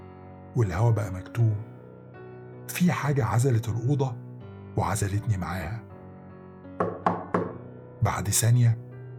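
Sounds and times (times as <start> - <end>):
speech: 0.6 - 1.7, 2.7 - 4.2, 4.8 - 5.9, 8.0 - 8.8
sharp knocks on a door: 6.8 - 7.7.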